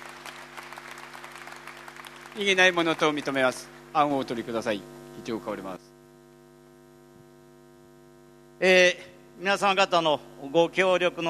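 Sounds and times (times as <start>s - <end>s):
large audience applauding in a hall: 0.0s - 3.7s
faint low electrical hum: 0.0s - 11.2s
speech: 2.4s - 5.9s, 8.6s - 11.2s.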